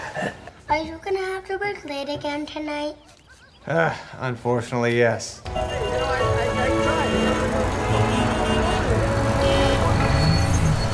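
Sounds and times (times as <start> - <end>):
speech: 0.2 - 6.8
dense road traffic rumbling: 5.4 - 10.9.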